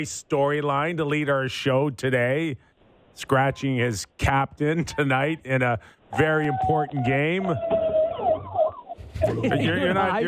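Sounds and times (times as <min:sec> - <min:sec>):
speech: 0:00.0 - 0:07.8, 0:09.2 - 0:10.2
ambulance siren wailing in rising and falling sweeps: 0:06.2 - 0:09.0.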